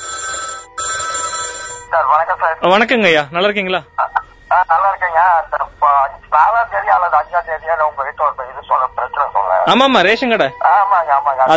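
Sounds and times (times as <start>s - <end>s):
telephone ringing with an incoming call: 0.0s - 2.2s
speech: 1.9s - 11.5s.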